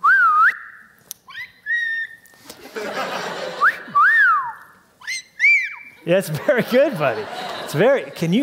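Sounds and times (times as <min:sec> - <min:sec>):
person whistling: 0:00.0 - 0:00.8, 0:03.6 - 0:05.8
laughter: 0:02.4 - 0:04.0, 0:06.1 - 0:08.4
speech: 0:06.1 - 0:08.4.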